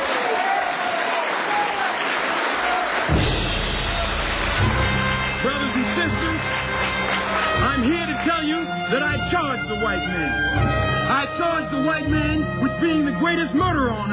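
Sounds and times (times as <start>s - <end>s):
large crowd applause welcoming a speaker: 0.0s - 11.0s
speech: 7.8s - 14.1s.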